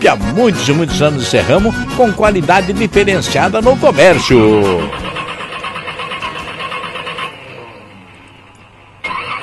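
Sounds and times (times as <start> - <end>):
speech: 0.1 - 5.1
car engine cranking and running roughly: 4.5 - 8.4.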